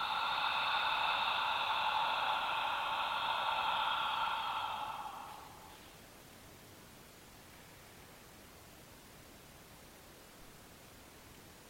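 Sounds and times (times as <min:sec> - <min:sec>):
long open-mouthed breathy ha exhale: 0:00.0 - 0:06.0.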